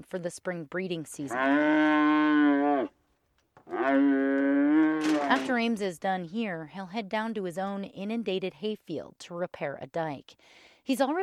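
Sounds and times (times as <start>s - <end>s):
speech: 0.0s - 3.0s, 3.8s - 4.6s, 5.3s - 11.2s
young heifer on a ranch mooing while ear is tattooed: 1.3s - 2.9s, 3.7s - 5.6s.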